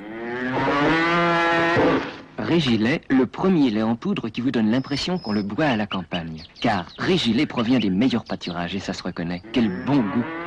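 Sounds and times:
cow mooing: 0.0s - 2.1s, 9.4s - 10.4s
speech: 2.5s - 10.4s.

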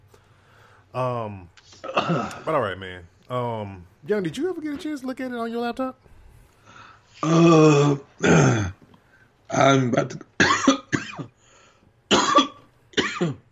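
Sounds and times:
speech: 0.9s - 6.1s, 7.2s - 8.8s, 9.6s - 10.5s, 13.2s - 13.4s
person coughing loudly: 1.8s - 2.5s, 7.2s - 8.8s, 9.8s - 11.4s, 12.1s - 13.4s.

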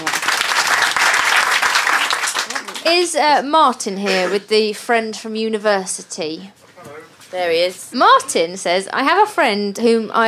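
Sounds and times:
audience applause: 0.0s - 3.2s
speech: 2.8s - 6.6s, 7.3s - 10.2s.

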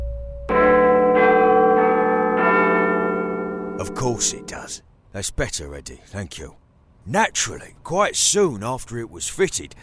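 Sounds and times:
large bells ringing a four-note chime melody: 0.0s - 4.8s
speech: 3.8s - 9.8s.

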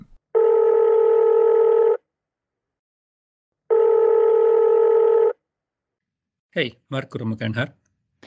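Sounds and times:
electronic telephone ringback tones: 0.4s - 2.0s, 3.7s - 5.4s
speech: 6.6s - 7.8s.

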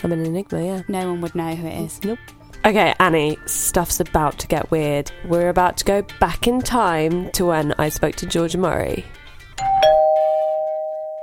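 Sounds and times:
speech: 0.0s - 9.2s
doorbell ringing with a two-note chime: 9.6s - 11.2s.

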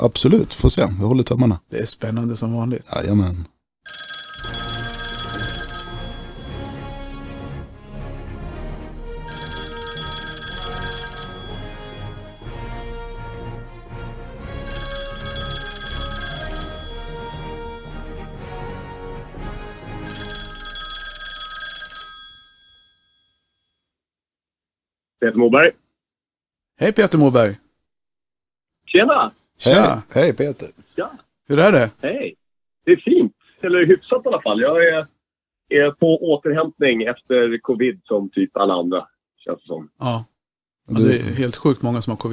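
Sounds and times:
speech: 0.0s - 4.0s, 25.3s - 25.8s, 26.8s - 27.6s, 28.9s - 40.3s, 40.9s - 42.3s
telephone ringing during an outgoing call: 3.9s - 7.8s, 9.3s - 12.7s, 14.6s - 18.9s, 20.0s - 23.8s.

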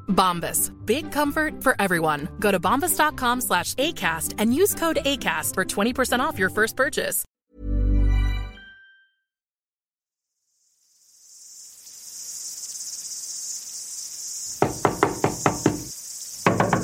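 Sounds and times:
speech: 0.1s - 7.7s
crickets chirping at night: 10.4s - 16.8s
sharp knocks on the door of a pilgrim's home: 14.6s - 16.8s.

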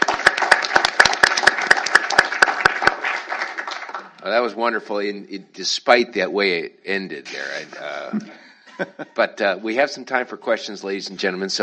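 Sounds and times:
audience applauding a speaker after a talk: 0.0s - 4.4s
speech: 4.2s - 11.6s
laughter: 7.3s - 9.9s.

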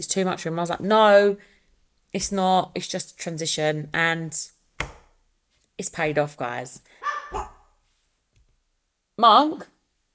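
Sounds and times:
speech: 0.0s - 1.5s, 2.1s - 4.9s, 5.8s - 7.5s, 9.2s - 9.7s
dog barking with rough and wavering barks: 7.0s - 7.8s.

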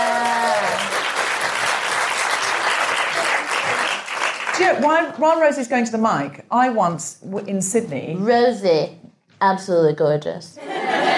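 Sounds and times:
audience applause: 0.0s - 5.0s
speech: 4.6s - 11.1s
laughter: 10.6s - 11.1s.

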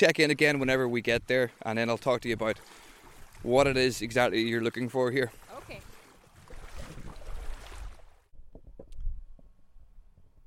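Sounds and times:
speech: 0.0s - 5.9s
boat surging through water with spray and hull noise: 0.5s - 8.2s.

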